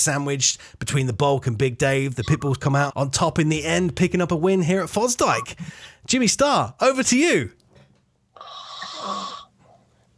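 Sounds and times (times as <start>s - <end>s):
speech: 0.0s - 7.6s
snoring: 8.4s - 9.5s.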